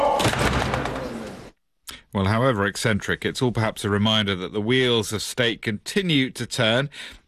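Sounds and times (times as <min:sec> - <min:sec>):
heavy door slamming shut: 0:00.2 - 0:01.3
speech: 0:02.5 - 0:07.2.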